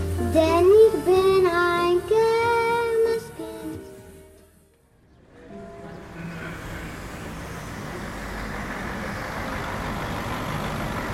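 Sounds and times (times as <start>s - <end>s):
long-distance coach bus engine rumbling as it rolls into its bay: 0.0s - 11.1s
road noise of a long-distance coach bus rolling into its bay: 0.0s - 11.1s
speech: 0.4s - 1.2s.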